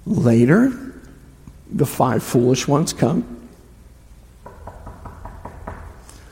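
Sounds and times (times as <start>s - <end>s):
speech: 0.0s - 0.8s, 1.7s - 3.4s
knocking on a door: 4.4s - 6.0s.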